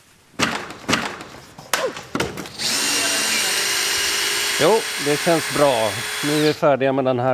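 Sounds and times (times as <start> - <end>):
power drill dismantling an election booth: 2.6 - 6.6
speech: 4.6 - 7.3.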